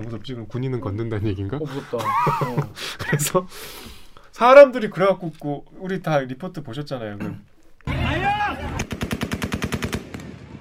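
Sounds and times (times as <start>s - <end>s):
speech: 0.0s - 8.8s
laughter: 1.6s - 3.5s
people shouting in the city: 7.9s - 8.9s
automatic gunfire in the city: 8.8s - 10.6s.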